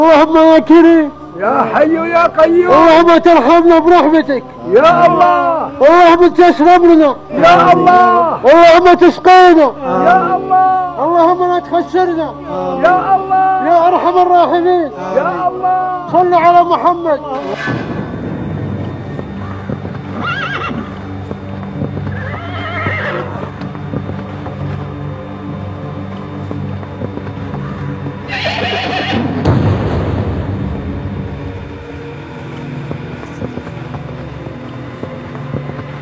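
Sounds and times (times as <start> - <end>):
speech: 0.0 - 17.9
horse neighing: 20.1 - 21.0, 22.1 - 23.6, 28.2 - 29.4.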